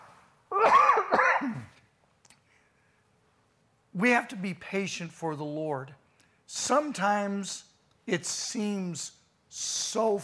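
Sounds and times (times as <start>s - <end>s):
harsh raspy coughs: 0.5s - 1.8s
speech: 4.0s - 10.2s.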